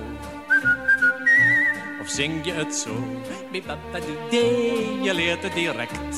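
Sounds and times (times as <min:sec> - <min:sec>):
soft instrumental backing: 0:00.0 - 0:06.1
bright whistled tune: 0:00.4 - 0:02.2
speech: 0:02.1 - 0:06.1.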